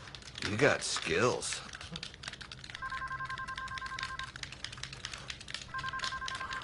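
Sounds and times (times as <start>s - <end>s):
speech: 0.4s - 2.1s
telephone ringing with pulsing electronic tone: 2.8s - 4.4s, 5.7s - 6.6s.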